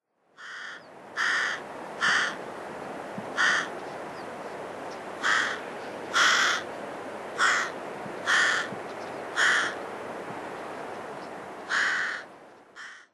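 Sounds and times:
Carrion Crow calling in Nemuro: 0.4s - 2.4s, 3.4s - 3.8s, 5.2s - 6.7s, 7.4s - 9.8s, 11.7s - 13.1s.

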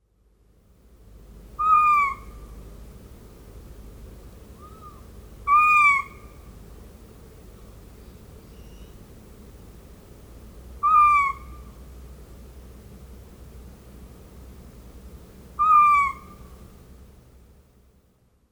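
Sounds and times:
Japanese Scops Owl calling: 1.6s - 2.6s, 4.5s - 6.6s, 7.6s - 9.2s, 10.8s - 11.9s, 15.5s - 16.8s.

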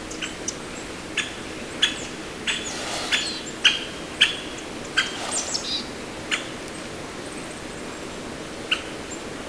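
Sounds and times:
great spotted woodpecker giving kik calls in Tomakomai, Japan: 0.1s - 6.6s
steady hiss of background noise: 0.3s - 9.3s.

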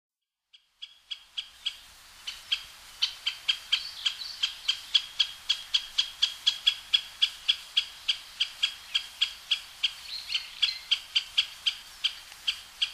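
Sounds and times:
great spotted woodpecker uttering sharp clipped notes at Osado, Sado: 0.5s - 12.9s
faint hiss: 1.0s - 12.9s.

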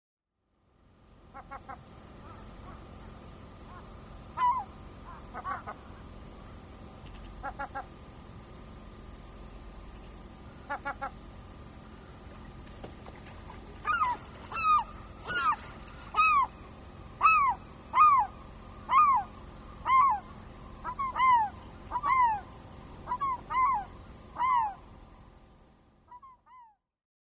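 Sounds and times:
Slaty-backed Gull calling: 1.3s - 6.2s, 7.0s - 8.0s, 10.5s - 11.3s, 13.5s - 25.0s, 26.1s - 26.8s.

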